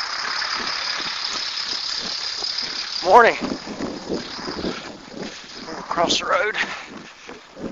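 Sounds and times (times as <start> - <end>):
another truck behind: 0.0 - 5.1
heavy recycling truck rumbling past: 0.0 - 7.6
rattling of recycling truck: 0.0 - 7.6
speech: 3.1 - 4.3, 6.0 - 6.8.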